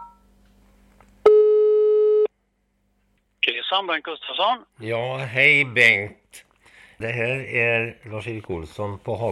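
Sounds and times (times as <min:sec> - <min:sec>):
single steady clean telephone tone: 0:01.3 - 0:02.3
speech: 0:03.8 - 0:09.3.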